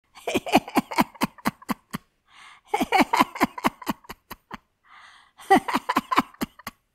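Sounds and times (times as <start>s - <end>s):
kind elderly woman laughing: 0.1s - 2.1s, 2.7s - 4.7s, 5.4s - 6.9s.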